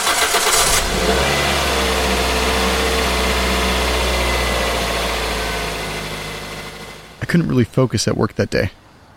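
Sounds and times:
car engine starting and revving: 0.0s - 7.2s
speech: 7.3s - 8.8s.

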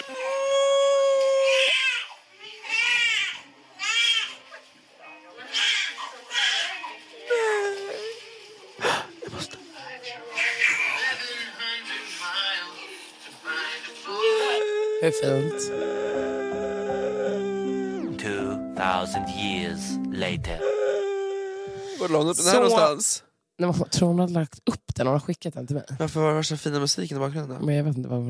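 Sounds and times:
newborn baby crying: 0.0s - 4.3s, 13.5s - 18.6s, 20.6s - 22.6s
adult voices murmuring: 5.5s - 23.1s
speech: 15.1s - 15.8s, 19.0s - 20.8s, 22.0s - 28.2s.

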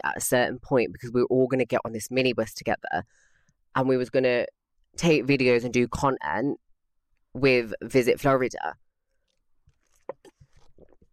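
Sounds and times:
speech: 0.0s - 6.6s, 7.4s - 8.8s
person sipping peppermint tea from a mug: 9.1s - 11.1s
swallowing: 9.2s - 11.1s.

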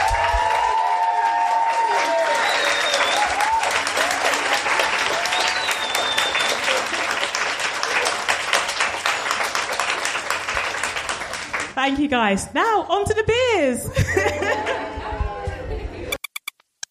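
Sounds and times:
audience cheering: 0.0s - 10.0s
large audience applauding at an event: 0.0s - 11.8s
scattered whistles from audience: 2.3s - 3.5s, 5.2s - 6.8s
speech: 11.9s - 14.8s
laughter: 13.9s - 16.1s.

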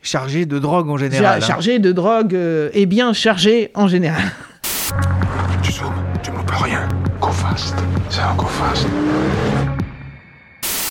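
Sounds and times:
speech: 0.1s - 9.8s
short harsh burst of noise: 4.6s - 5.0s, 10.6s - 10.8s
fast car engine roaring at high speed on a motorway: 5.0s - 10.0s.

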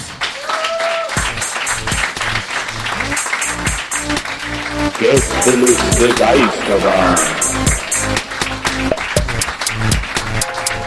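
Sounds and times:
audience applause: 0.0s - 10.3s
tonal musical notes: 4.8s - 9.8s
speech: 5.0s - 8.2s
brief voice-like sounds: 5.0s - 8.8s.

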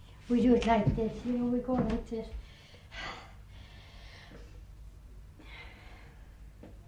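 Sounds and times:
low steady hum: 0.0s - 6.8s
speech: 0.3s - 2.4s
slow audible Tai Chi deep breathing inhales and exhales: 2.4s - 6.8s.

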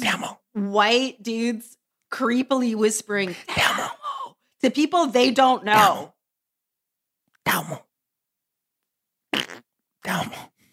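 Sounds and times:
speech: 0.2s - 4.0s, 4.6s - 6.2s, 7.4s - 7.9s, 10.0s - 10.5s
short raspy fart: 9.3s - 9.8s.

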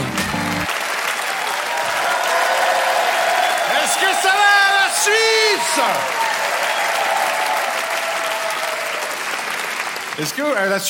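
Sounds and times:
large audience applauding and cheering: 0.0s - 10.8s
speech: 5.6s - 6.2s, 10.2s - 10.8s.

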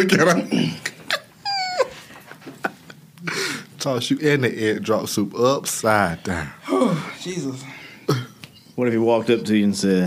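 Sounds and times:
speech: 0.0s - 0.8s, 3.8s - 8.2s, 8.8s - 10.0s
dog whimpering and whining: 1.1s - 2.1s.

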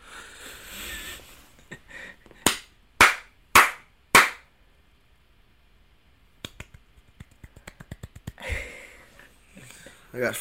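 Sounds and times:
hand claps in polite golf applause: 2.4s - 4.4s, 6.4s - 8.5s
speech: 10.2s - 10.4s.

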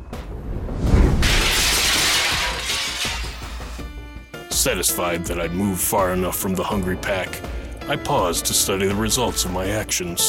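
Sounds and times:
glass window shattering: 1.2s - 3.9s
speech: 4.6s - 10.2s.

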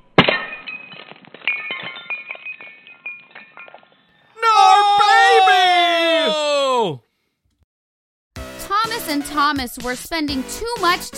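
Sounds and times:
champagne bottle smashed against boat hull: 0.0s - 4.2s
glass shards tinkling: 0.2s - 4.2s
loud wailing cry sliding downward in pitch: 4.4s - 7.0s
speech: 9.4s - 11.1s.

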